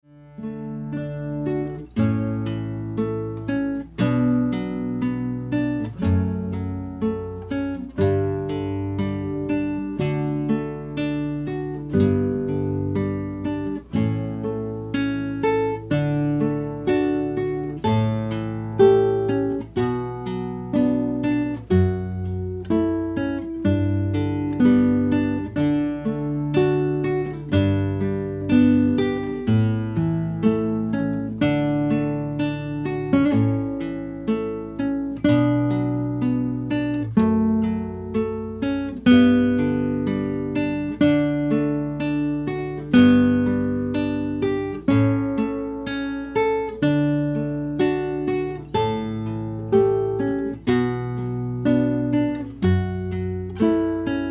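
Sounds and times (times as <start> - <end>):
Spanish guitar duo playing flamenco ceremony piece: 0.2 - 54.3.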